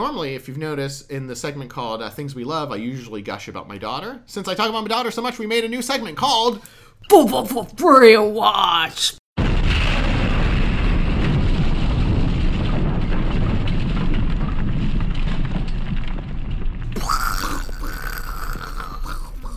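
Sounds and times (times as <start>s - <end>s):
speech: 0.0s - 9.2s
explosion: 9.4s - 19.5s.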